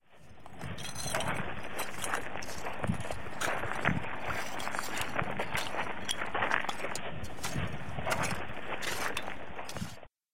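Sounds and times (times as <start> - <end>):
lagoon stones: 0.3 - 10.1.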